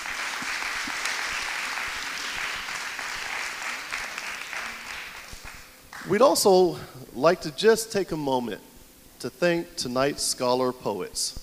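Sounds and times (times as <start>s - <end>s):
sustained applause from a sizable audience: 0.0s - 6.1s
speech: 6.1s - 11.4s.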